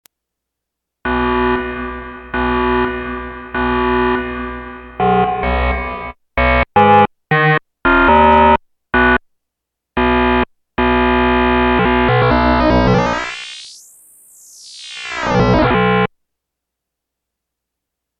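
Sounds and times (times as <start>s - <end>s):
SY99 synthesizer base alarm sound: 1.1s - 9.2s, 10.0s - 16.1s.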